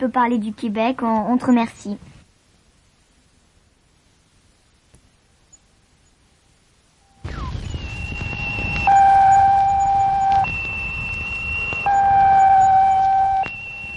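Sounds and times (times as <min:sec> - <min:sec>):
speech: 0:00.0 - 0:02.1
radio static crackling: 0:07.0 - 0:13.9
space probe radio beeping signal: 0:07.0 - 0:13.9.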